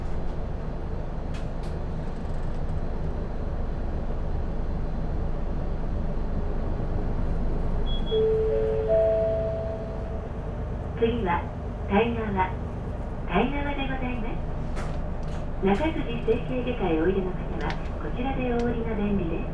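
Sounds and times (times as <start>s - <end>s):
bus engine rumbling: 0.0s - 19.5s
rising bus engine whine as bus departs from stop: 7.8s - 11.4s
speech: 11.0s - 12.6s, 13.3s - 14.3s, 15.6s - 19.5s.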